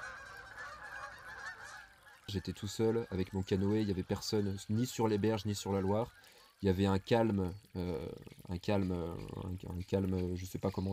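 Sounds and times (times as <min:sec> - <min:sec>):
flock of wild geese honking as they take flight over the Loire river: 0:00.0 - 0:07.0
speech: 0:02.3 - 0:10.9.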